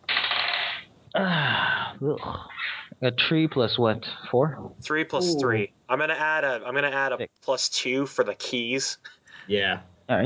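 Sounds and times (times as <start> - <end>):
dice rolled for a strength check in a tabletop role-playing game: 0.1 - 0.8
speech: 1.2 - 10.2.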